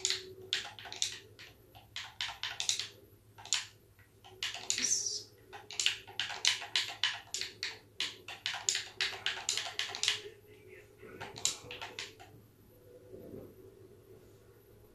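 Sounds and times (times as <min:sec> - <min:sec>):
typing on a computer keyboard into in-game chat: 0:00.0 - 0:10.3, 0:11.1 - 0:12.4.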